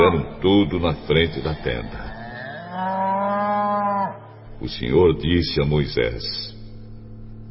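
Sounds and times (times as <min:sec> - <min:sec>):
speech: 0:00.1 - 0:02.2, 0:02.8 - 0:06.5
ox mooing: 0:01.4 - 0:04.4.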